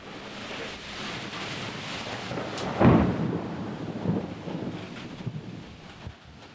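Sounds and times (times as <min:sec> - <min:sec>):
gusting wind: 0:00.0 - 0:06.5
loud crack of thunder rumbling: 0:00.0 - 0:06.5
steady rain: 0:00.0 - 0:06.5.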